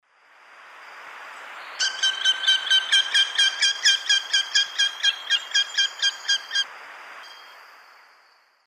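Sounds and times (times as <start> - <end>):
perched male Falco deiroleucus calling in South American Eastern Lowlands: 1.8 - 6.6.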